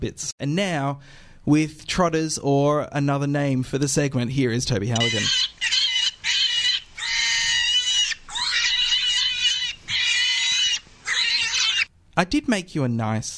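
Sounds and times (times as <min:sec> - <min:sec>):
speech: 0:00.0 - 0:05.7, 0:12.2 - 0:13.3
pig squealing: 0:05.0 - 0:11.9.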